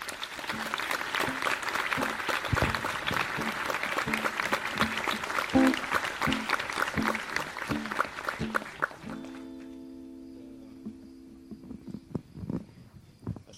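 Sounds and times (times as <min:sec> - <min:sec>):
crowd applauding: 0:00.0 - 0:09.9.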